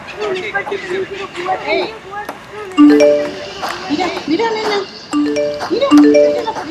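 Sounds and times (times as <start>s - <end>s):
speech: 0.2s - 6.6s
phone message notification ding: 2.8s - 3.6s, 5.2s - 6.6s.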